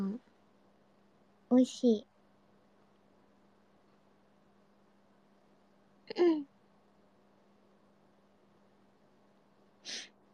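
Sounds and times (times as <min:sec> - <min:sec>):
steady low hum: 0:00.0 - 0:10.3
speech: 0:01.5 - 0:02.1
short breathy hiss: 0:09.8 - 0:10.2
forced exaggerated fake sneeze: 0:09.9 - 0:10.1.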